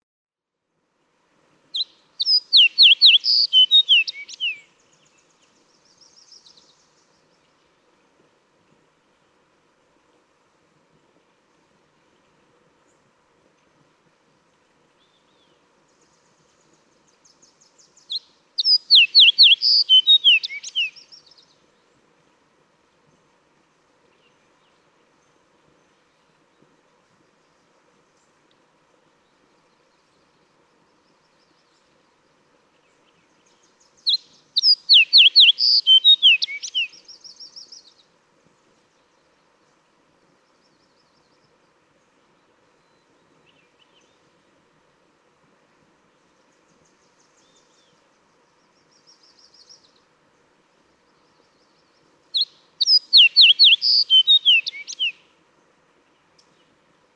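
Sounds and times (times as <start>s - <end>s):
fox sparrow: 1.7s - 4.6s, 17.4s - 21.5s, 34.0s - 38.0s, 52.3s - 55.2s.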